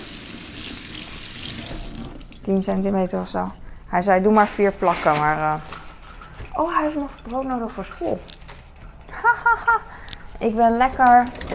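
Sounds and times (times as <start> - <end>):
water running from a kitchen tap: 0.0 - 2.5
something rinsed at the kitchen sink: 0.0 - 2.7, 5.7 - 8.3
speech: 2.4 - 5.7, 6.6 - 8.4, 10.4 - 11.5
laughter: 9.1 - 10.1.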